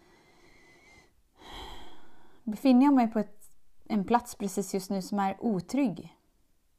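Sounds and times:
deep breath drawn in close to the microphone: 0.0s - 2.5s
speech: 2.5s - 6.2s.

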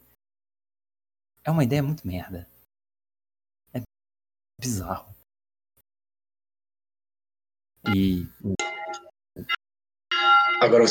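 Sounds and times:
speech: 1.5s - 2.5s, 4.6s - 5.2s, 7.8s - 8.7s, 9.4s - 9.6s, 10.2s - 10.8s
bell ringing with bright metallic clang: 8.6s - 9.1s, 10.1s - 10.8s.

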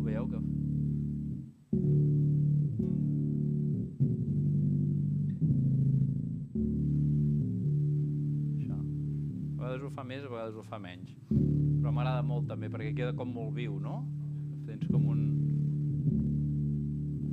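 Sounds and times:
electric guitar through an octave pedal playing two-note chords: 0.0s - 9.6s, 11.2s - 17.3s
speech: 9.9s - 15.6s.

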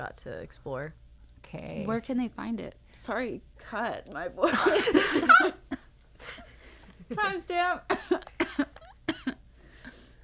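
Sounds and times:
speech: 0.0s - 6.4s, 7.1s - 9.3s
harsh coughing fit: 7.9s - 9.4s.

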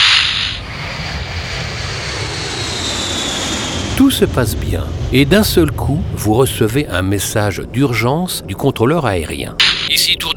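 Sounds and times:
airplane taking off with engine roar: 0.0s - 10.3s
speech: 4.0s - 10.3s.

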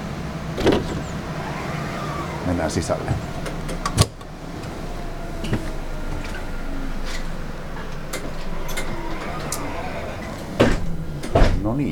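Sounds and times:
articulated electric bus doors opening: 0.0s - 11.9s
articulated electric bus idling hum: 0.0s - 11.9s
speech: 2.5s - 3.4s, 11.8s - 11.9s.

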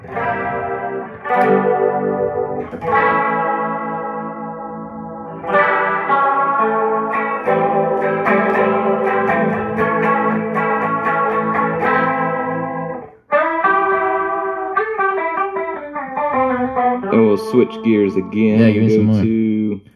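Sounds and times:
electric guitar through tri-chorus setting of an effect pedal: 0.0s - 19.9s
speech: 17.4s - 19.4s.

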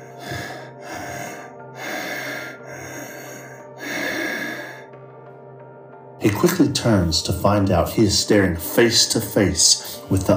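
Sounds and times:
loud rough raspy heavy breathing: 0.0s - 5.3s
speech: 6.2s - 10.3s.

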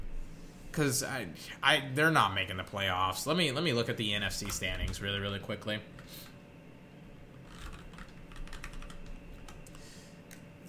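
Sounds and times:
speech: 0.8s - 6.3s
typing on a computer keyboard: 7.5s - 9.8s.

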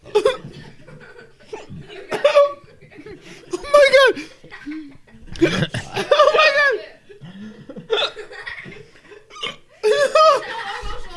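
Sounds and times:
breathy laughter: 0.0s - 6.4s, 7.1s - 11.1s
person hiccuping: 5.4s - 6.0s.

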